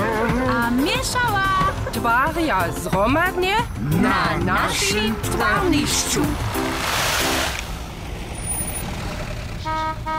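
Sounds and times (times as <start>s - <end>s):
heavy cargo truck engine rumbling: 0.4s - 10.1s
speech: 0.8s - 6.7s
cargo truck short horn honks: 9.6s - 10.1s.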